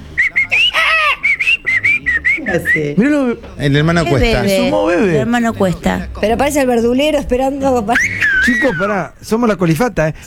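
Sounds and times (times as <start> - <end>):
southern screamer calling with honking whistle-like notes: 0.0 - 2.9
speech: 2.5 - 10.2.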